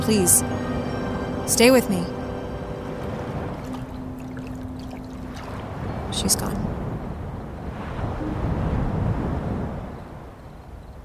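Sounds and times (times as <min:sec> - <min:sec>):
boat being rowed on open water: 0:00.0 - 0:07.2
low rushing wash of water: 0:00.0 - 0:10.4
wind: 0:00.0 - 0:11.0
speech: 0:00.1 - 0:00.7, 0:01.5 - 0:02.2, 0:06.2 - 0:06.7.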